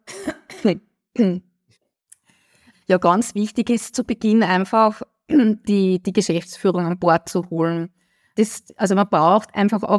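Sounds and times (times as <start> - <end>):
person clearing throat: 0.0 - 1.3
speech: 0.6 - 1.5, 2.9 - 9.9
faint breath: 2.2 - 2.9, 8.0 - 8.4.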